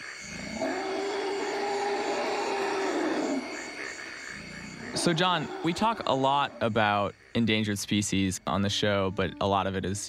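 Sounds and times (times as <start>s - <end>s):
droning forest hum: 0.0s - 10.0s
forest elephant low rumbling call: 0.2s - 6.8s
speech: 5.0s - 10.0s.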